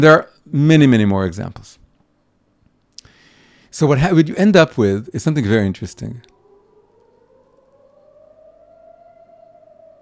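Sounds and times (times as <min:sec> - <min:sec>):
speech: 0:00.0 - 0:01.8, 0:03.8 - 0:06.3
civil defense rocket alert siren wailing in the open air: 0:05.4 - 0:10.0.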